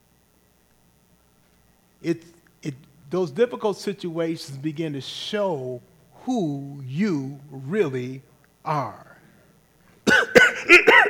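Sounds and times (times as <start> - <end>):
speech: 2.0 - 9.1
raspy throaty coughs: 10.0 - 11.0.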